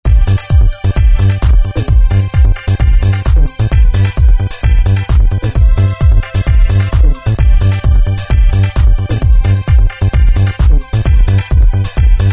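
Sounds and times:
techno pattern on a Roland MC-303 groovebox: 0:00.0 - 0:12.3.

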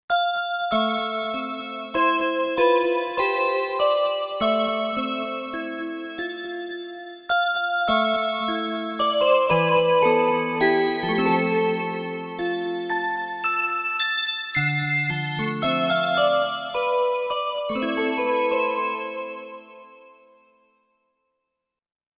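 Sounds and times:
Korg MSC-1S melody bell: 0:00.1 - 0:20.6.

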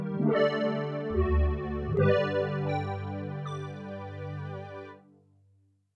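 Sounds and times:
synth pad from a Yamaha TX16W: 0:00.2 - 0:04.9.

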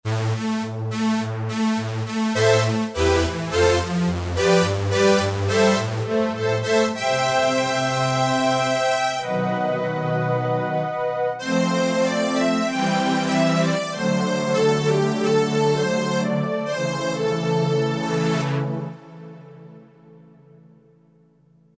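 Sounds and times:
Roland SRX-03 Studio SRX synth strings: 0:00.1 - 0:20.8.

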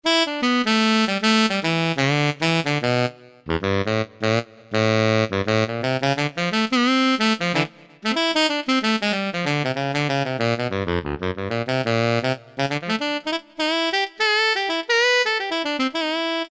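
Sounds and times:
Yamaha TG500 synthesizer alto sound: 0:00.0 - 0:16.4.

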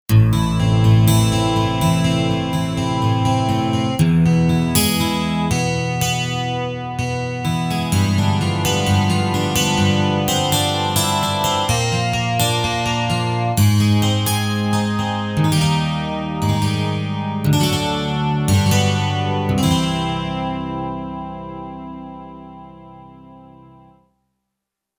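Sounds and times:
12-string guitar patch on a Roland JV-880 synthesizer: 0:00.1 - 0:24.0.

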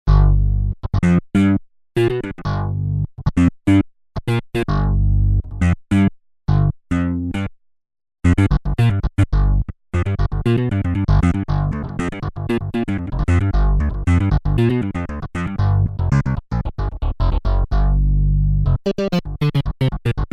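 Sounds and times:
slap bass on a Korg DW-8000 synthesizer: 0:00.1 - 0:07.5, 0:08.2 - 0:20.3.

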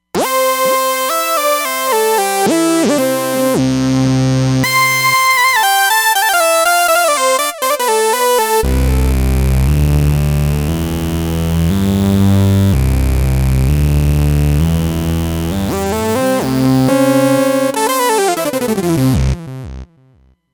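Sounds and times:
analog synthesizer sound from a Roland Fantom XR: 0:00.2 - 0:20.1.

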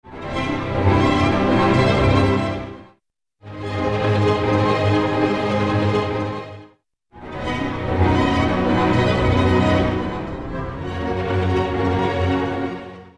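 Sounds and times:
string arpeggios: 0:00.1 - 0:02.8, 0:03.5 - 0:06.6, 0:07.2 - 0:13.1.

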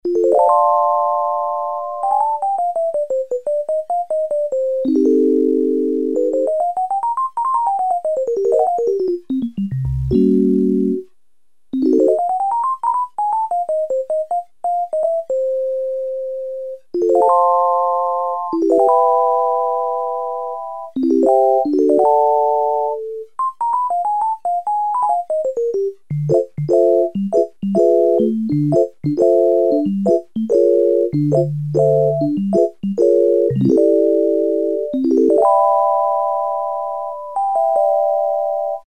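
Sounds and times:
Casio CZ-1000 electric piano preset: 0:00.1 - 0:11.1, 0:11.8 - 0:38.8.

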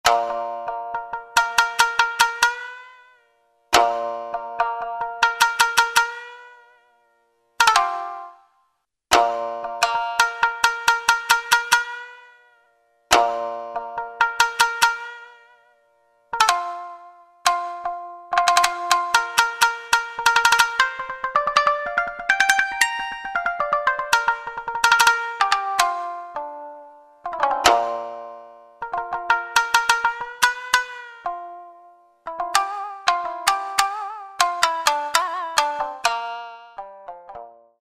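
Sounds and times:
shamisen: 0:00.0 - 0:37.8.

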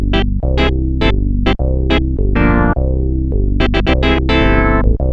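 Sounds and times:
Roland Juno-106 synthesizer organ preset: 0:00.1 - 0:02.8, 0:03.6 - 0:05.0.

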